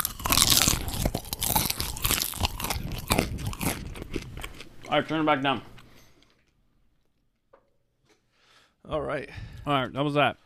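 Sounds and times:
four popcorn kernels crunching between the teeth: 0:00.0 - 0:05.6
chewing popcorn: 0:00.0 - 0:07.2
speech: 0:04.9 - 0:05.7, 0:09.1 - 0:10.4.

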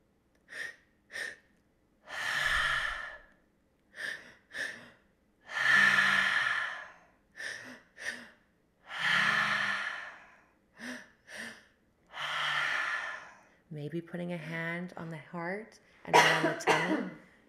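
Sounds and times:
deep breathing with inhales into the chest and exhales through the mouth: 0:02.1 - 0:13.7
speech: 0:13.8 - 0:17.3.

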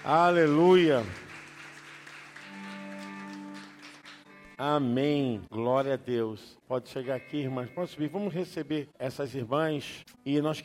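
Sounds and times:
speech: 0:00.0 - 0:01.2, 0:04.6 - 0:10.6
church audience applauding: 0:00.0 - 0:04.6.

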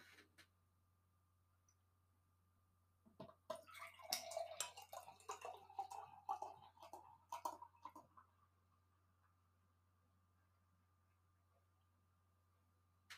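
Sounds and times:
faint hum: 0:00.0 - 0:13.1
light yellow Pilsner beer being poured into a glass: 0:03.2 - 0:08.6.

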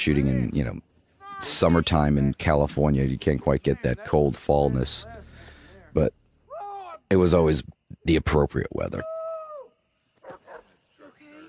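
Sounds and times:
speech: 0:00.0 - 0:05.2, 0:06.0 - 0:06.2, 0:07.1 - 0:09.1
dog barking: 0:10.2 - 0:11.2.

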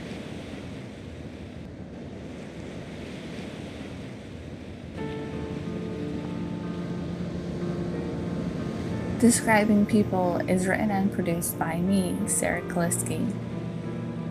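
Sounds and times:
rushing sea waves with a windy hiss: 0:00.0 - 0:14.2
soft sustained musical tones: 0:05.0 - 0:14.2
speech: 0:09.2 - 0:13.5.

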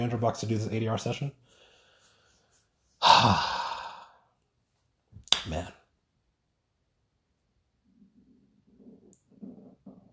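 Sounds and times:
speech: 0:00.0 - 0:01.6, 0:03.2 - 0:03.6, 0:05.4 - 0:05.8
hungry stomach rumbling: 0:07.9 - 0:10.1.

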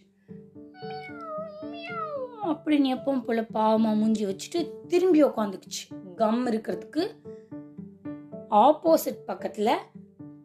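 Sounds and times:
cat meowing: 0:00.8 - 0:02.6
speech: 0:01.9 - 0:07.2, 0:08.5 - 0:09.9.

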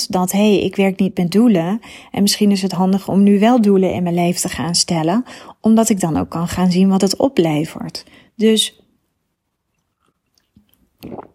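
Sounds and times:
speech: 0:00.0 - 0:08.8, 0:11.0 - 0:11.3
slurp and swallow of tea: 0:09.7 - 0:11.3
soft mouth clicks: 0:09.7 - 0:11.3.

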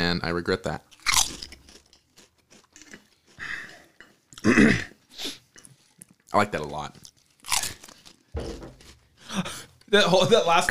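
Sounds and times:
speech: 0:00.1 - 0:01.0, 0:04.4 - 0:04.9, 0:06.3 - 0:07.0, 0:09.4 - 0:10.6
someone biting and chewing potato chips: 0:00.8 - 0:03.5, 0:05.7 - 0:09.7.

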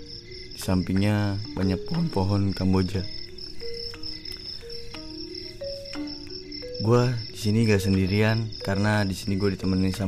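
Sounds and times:
crickets chirping at night beside frangipani trees: 0:00.0 - 0:10.0
speech: 0:00.6 - 0:03.2, 0:06.8 - 0:10.0.

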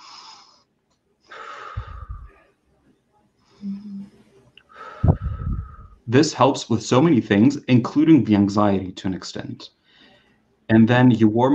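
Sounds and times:
deep breathing demonstration: 0:00.0 - 0:00.6, 0:01.3 - 0:02.4, 0:04.7 - 0:06.0, 0:09.8 - 0:10.5
speech: 0:06.1 - 0:09.8, 0:10.7 - 0:11.5.

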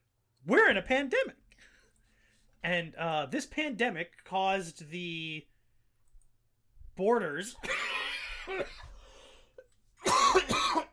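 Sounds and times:
speech: 0:00.4 - 0:01.4, 0:02.6 - 0:05.5, 0:07.0 - 0:07.9, 0:08.5 - 0:08.9
asthmatic harsh wheezy coughing fit: 0:07.6 - 0:09.0, 0:10.0 - 0:10.9.

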